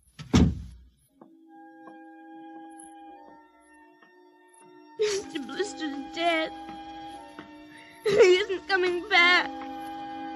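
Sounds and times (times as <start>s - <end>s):
kitchen door being closed: 0.2s - 0.8s
speech: 5.0s - 6.8s, 8.1s - 9.6s.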